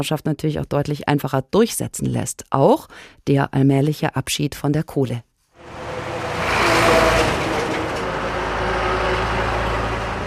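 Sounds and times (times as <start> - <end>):
speech: 0.0 - 5.8
continuous street noise in Yangchuan: 5.6 - 10.2
heavy coal-loaded trucks rumbling through Yangchuan in Shanxi Province China: 5.6 - 10.2.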